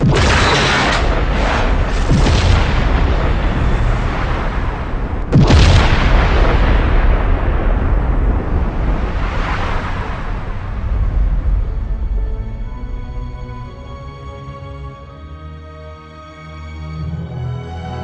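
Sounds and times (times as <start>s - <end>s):
sharp second explosion blast: 0.0s - 10.9s
loud rumbling explosion: 0.0s - 13.6s.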